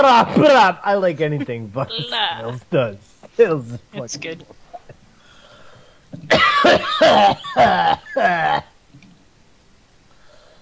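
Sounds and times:
speech: 0.0 - 4.6, 6.1 - 8.7
person coughing harshly with phlegmy raspy coughs: 6.2 - 8.7.

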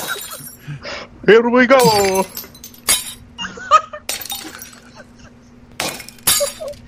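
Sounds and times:
clinks and tinkling glass fragments: 0.0 - 0.6, 1.8 - 3.2, 4.1 - 4.9, 5.8 - 6.8
mirror glass shattering: 0.0 - 0.6, 1.8 - 3.3, 4.1 - 4.9, 5.8 - 6.8
speech: 0.8 - 2.4.

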